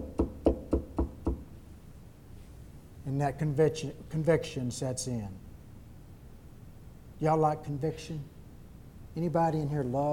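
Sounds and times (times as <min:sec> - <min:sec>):
dull knocks: 0:00.0 - 0:01.4
speech: 0:03.2 - 0:05.4, 0:07.2 - 0:08.4, 0:09.2 - 0:10.1.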